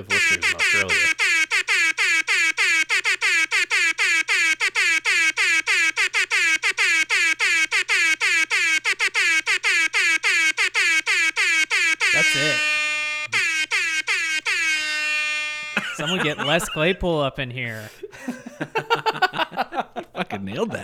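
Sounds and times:
laughter: 0.0s - 1.1s, 15.6s - 20.8s
speech: 0.0s - 1.2s, 16.2s - 19.1s, 20.4s - 20.8s
loud air horn blasting in a rhythm: 0.0s - 17.1s.

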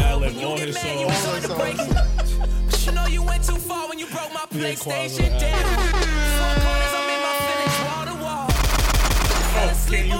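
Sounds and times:
laughter: 0.0s - 3.7s
loud music beat: 0.0s - 10.1s
speech: 0.6s - 2.1s, 4.6s - 6.7s
gunshot sound effects with single booming shots and automatic fire: 8.5s - 9.9s.

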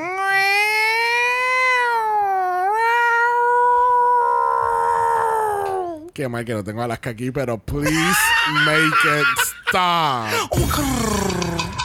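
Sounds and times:
cat meowing: 0.0s - 5.5s
speech: 6.2s - 11.7s
laughter: 7.9s - 10.5s.

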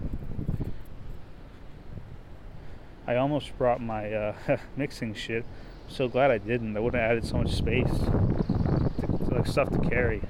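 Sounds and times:
wind blowing outdoors in Astoria buffeting the microphone: 0.0s - 2.7s, 6.0s - 10.2s
speech: 3.1s - 8.4s, 9.4s - 10.2s.

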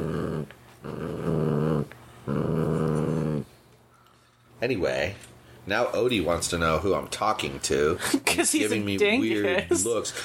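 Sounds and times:
dog growling while tugging at a toy: 0.0s - 3.6s
speech: 4.6s - 10.2s.

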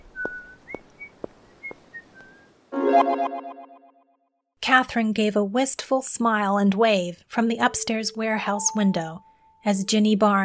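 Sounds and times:
lively whistled tune: 0.0s - 2.5s
speech: 3.0s - 3.7s, 4.7s - 10.4s.

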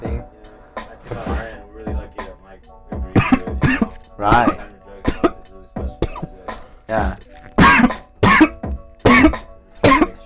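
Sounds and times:
loud harsh coughs: 3.2s - 10.2s
speech: 4.2s - 4.6s.

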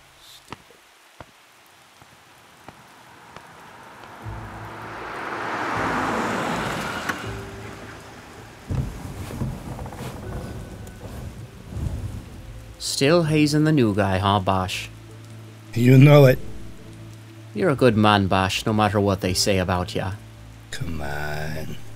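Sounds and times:
steady rain on a wet street in the morning: 0.0s - 21.9s
approaching car tire swish: 2.8s - 12.8s
low thumps: 3.4s - 12.9s
speech: 13.0s - 15.0s, 15.7s - 16.5s, 17.6s - 21.8s.

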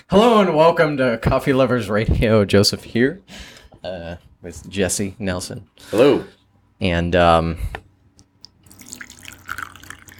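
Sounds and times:
speech: 0.0s - 7.8s
water pouring while preparing coffee: 8.5s - 10.1s.

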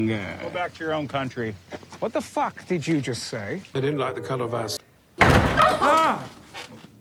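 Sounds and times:
speech: 0.0s - 4.8s
door bursting open without a knock with a sudden loud bang: 5.2s - 6.2s.

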